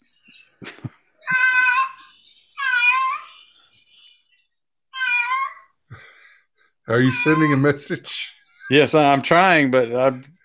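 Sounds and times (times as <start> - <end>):
cat meowing: 1.2 - 3.3, 4.9 - 5.7, 6.9 - 7.7
speech: 6.9 - 10.4.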